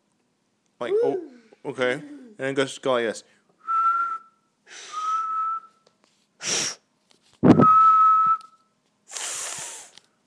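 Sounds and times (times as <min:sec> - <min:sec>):
speech: 0:00.8 - 0:03.4
person whistling short steady tones: 0:03.6 - 0:05.8, 0:07.5 - 0:08.6
breathy puffs of air from failed whistling: 0:04.7 - 0:05.4, 0:06.4 - 0:06.9, 0:09.1 - 0:10.0.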